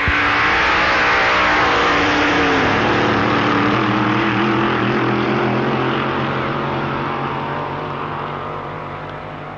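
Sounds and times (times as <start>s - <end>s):
big English-built American-pattern drag racing car engine roaring down strip: 0.0s - 9.5s.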